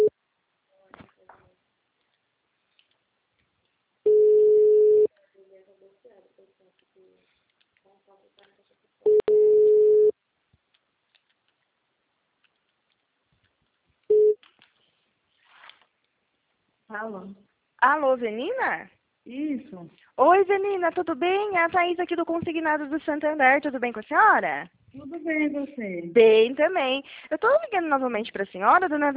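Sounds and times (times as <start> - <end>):
faint clicks: 2.0 - 3.8, 12.4 - 14.8
telephone ringback tone while calling: 4.1 - 5.1, 9.1 - 10.1
speech: 17.0 - 29.1.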